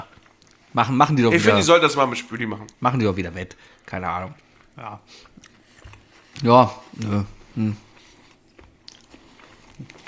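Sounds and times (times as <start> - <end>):
person chewing food: 0.1 - 0.7, 3.5 - 10.0
speech: 0.7 - 5.5, 6.4 - 7.9.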